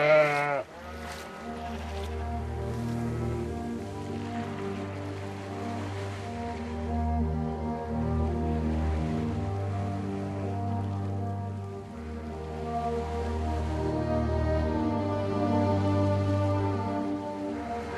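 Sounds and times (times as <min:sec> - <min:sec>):
sheep bleating on tidal salt meadows: 0:00.0 - 0:01.5
soft wash of wind or surf: 0:00.0 - 0:17.9.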